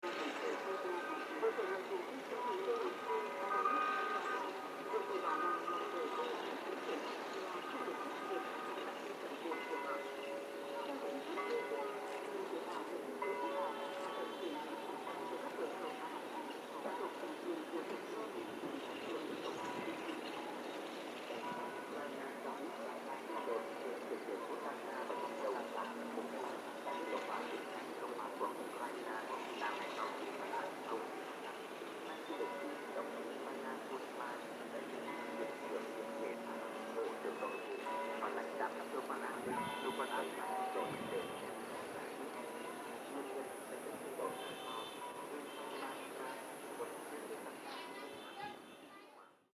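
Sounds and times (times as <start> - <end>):
soft ambient sound in Vietnam: 0.0 - 49.4.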